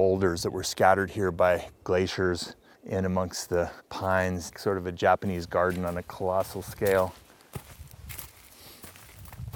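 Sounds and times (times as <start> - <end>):
speech: 0.0 - 7.2
footsteps climbing a steep rocky mountain trail among pines and boulders: 3.6 - 9.5.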